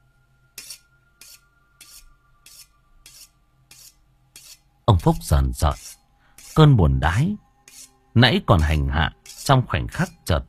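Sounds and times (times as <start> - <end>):
rasping metal scrapes: 0.6 - 6.7, 7.6 - 8.0, 8.6 - 9.7
speech: 4.9 - 6.0, 6.6 - 7.4, 8.2 - 10.4.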